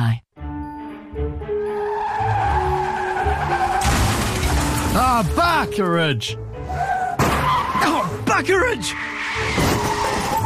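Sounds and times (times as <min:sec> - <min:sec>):
car tyres screeching in a long skid: 0:01.6 - 0:05.2, 0:06.4 - 0:10.4
car crash: 0:02.5 - 0:05.4, 0:07.0 - 0:08.0, 0:09.0 - 0:10.4
speech: 0:05.2 - 0:06.4, 0:07.8 - 0:09.6.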